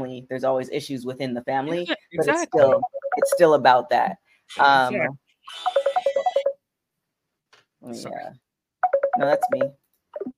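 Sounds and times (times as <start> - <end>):
speech: 0.0 - 5.8, 7.8 - 8.4, 9.2 - 10.3
WhatsApp call ringtone beeps on a phone: 2.3 - 3.6, 5.5 - 6.6, 8.8 - 10.3.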